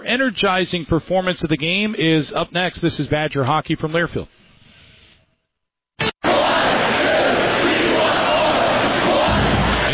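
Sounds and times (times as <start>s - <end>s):
speech: 0.1s - 4.4s
large crowd of hockey fans cheering: 6.2s - 9.9s.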